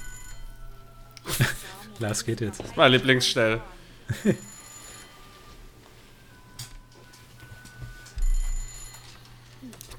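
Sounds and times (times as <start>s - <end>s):
telephone bell on a minibar ringing: 0.0s - 0.9s, 4.2s - 9.4s
faint room hum: 0.0s - 9.9s
laughter: 1.2s - 1.8s, 4.1s - 4.5s
speech: 1.2s - 4.5s.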